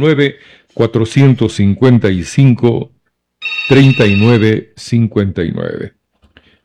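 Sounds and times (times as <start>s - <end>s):
speech: 0.0s - 6.0s
telephone ringing on a call-in line: 3.4s - 4.7s.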